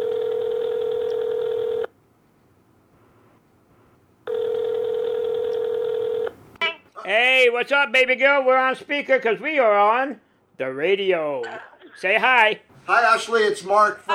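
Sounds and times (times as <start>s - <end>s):
electronic telephone ringing tones on a call line: 0.0s - 1.9s, 4.3s - 6.4s
speech: 7.1s - 14.1s.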